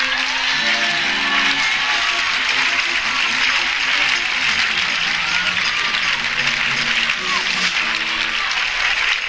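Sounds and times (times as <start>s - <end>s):
applause from a large audience: 0.0s - 9.2s
cheering: 0.0s - 9.2s
murmur of voices: 0.0s - 9.2s.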